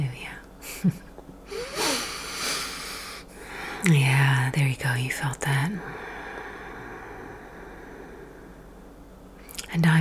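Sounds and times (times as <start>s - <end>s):
speech: 0.8s - 1.0s, 3.8s - 6.0s, 9.8s - 9.9s
deep breathing: 1.5s - 3.9s, 5.8s - 9.0s.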